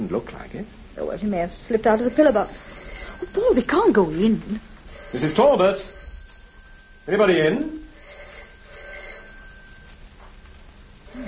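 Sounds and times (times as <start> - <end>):
speech: 0.0 - 6.0, 7.1 - 7.8
low hum: 0.0 - 11.2
telephone bell ringing muffled and distant: 1.9 - 10.4, 11.0 - 11.2.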